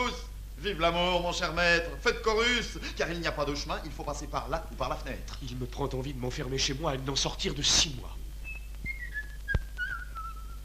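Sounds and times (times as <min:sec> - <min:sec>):
speech: 0:00.1 - 0:08.2
person whistling a tune: 0:08.4 - 0:10.6.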